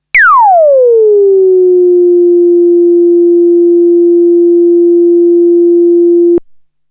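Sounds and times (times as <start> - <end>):
self-oscillating VCF tone on C: 0.0 - 6.4.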